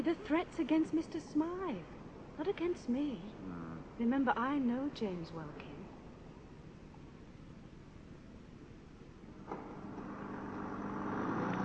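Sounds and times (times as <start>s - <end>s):
speech: 0.0s - 5.7s
car engine rumbling while driving: 9.3s - 11.6s.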